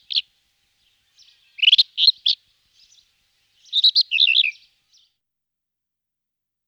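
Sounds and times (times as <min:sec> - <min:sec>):
rufous-tailed scrub robin singing: 0:00.0 - 0:05.1.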